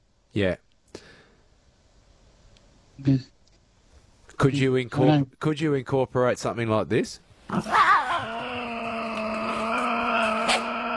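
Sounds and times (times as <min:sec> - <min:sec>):
speech: 0:00.3 - 0:00.6, 0:03.0 - 0:03.3, 0:04.4 - 0:07.9
Tasmanian devil growling: 0:07.5 - 0:10.9.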